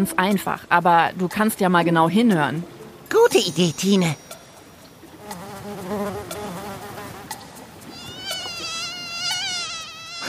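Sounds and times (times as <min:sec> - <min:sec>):
speech: 0:00.0 - 0:04.3
male and female mosquitoes buzzing with their wingbeats: 0:05.2 - 0:10.2.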